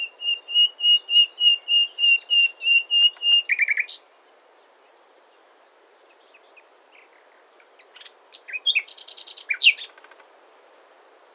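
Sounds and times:
common nightingale Luscinia megarhynchos song: 0.0 - 10.4.

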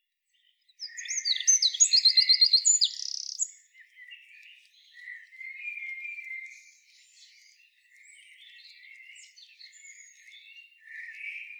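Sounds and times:
Eurasian wren Troglodytes troglodytes song: 0.4 - 11.5
fainter Eurasian wren calls: 0.8 - 3.6.

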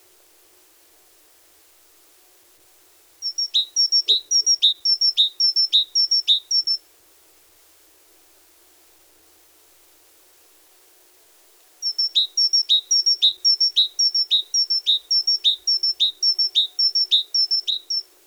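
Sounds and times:
great tit Parus major song of paired high-low whistled notes: 3.2 - 6.8, 11.8 - 18.1.

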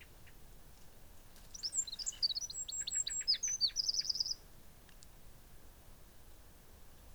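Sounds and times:
faint background hiss: 0.0 - 7.1
Eurasian wren Troglodytes troglodytes singing sharp trilled notes: 1.5 - 4.4.

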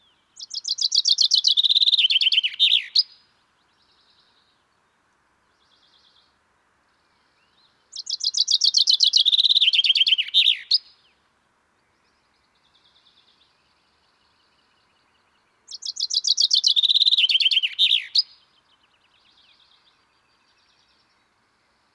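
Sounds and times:
common chaffinch Fringilla coelebs singing descending trilled phrases: 0.4 - 3.2, 7.9 - 11.0, 15.7 - 18.4.

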